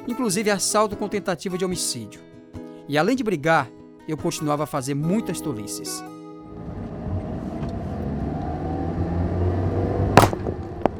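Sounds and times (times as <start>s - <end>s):
speech: 0.1s - 6.2s
car driving with road and engine rumble: 6.4s - 10.9s
sharp bang of a tire blowing out: 10.2s - 10.9s.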